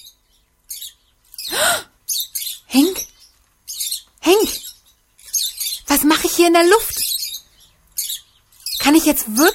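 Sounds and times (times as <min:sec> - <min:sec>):
birds chirping: 0:00.0 - 0:09.5
speech: 0:06.4 - 0:07.0, 0:08.9 - 0:09.5.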